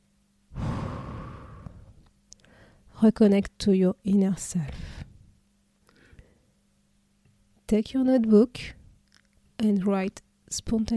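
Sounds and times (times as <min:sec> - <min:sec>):
deep breath exhale during a guided relaxation exercise: 0:00.5 - 0:02.8
speech: 0:03.0 - 0:05.0, 0:07.7 - 0:08.8, 0:09.6 - 0:10.9.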